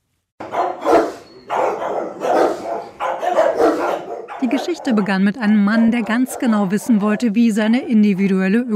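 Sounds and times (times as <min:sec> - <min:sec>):
dog barking roughly: 0:00.4 - 0:07.4
speech: 0:04.4 - 0:08.7.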